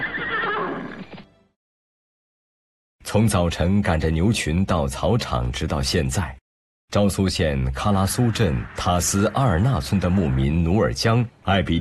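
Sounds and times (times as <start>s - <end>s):
Ili horse whinnying: 0.0s - 1.1s
speech: 3.1s - 11.7s.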